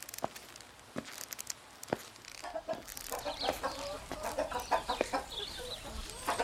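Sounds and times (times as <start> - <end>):
chickens clucking: 2.4 - 6.4.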